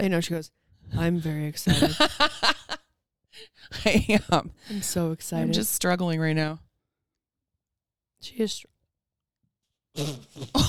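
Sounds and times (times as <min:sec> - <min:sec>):
speech: 0:00.0 - 0:02.5, 0:03.4 - 0:06.6, 0:08.2 - 0:08.7, 0:10.0 - 0:10.6
person letting out a short low gurgling burp: 0:10.0 - 0:10.6.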